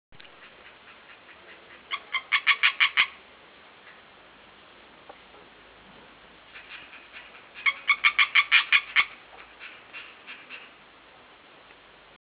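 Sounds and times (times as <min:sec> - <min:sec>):
European tree frog giving harsh clicking calls: 0:00.2 - 0:04.3, 0:06.5 - 0:10.8.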